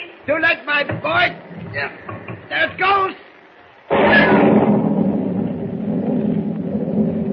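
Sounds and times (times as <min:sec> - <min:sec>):
speech: 0:00.3 - 0:03.3
thunder crash and rumble: 0:03.9 - 0:07.3.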